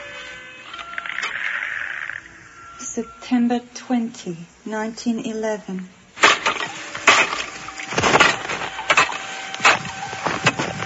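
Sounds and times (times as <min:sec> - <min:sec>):
speech: 0:03.0 - 0:06.0
axe smashing through a curtain of ice: 0:06.2 - 0:10.8.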